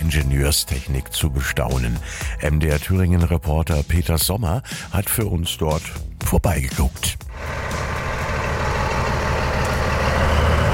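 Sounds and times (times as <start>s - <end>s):
speech: 0.1s - 7.6s
V100 diesel locomotive of 1100 horsepower starting to move at a railway summer festival: 7.3s - 10.7s.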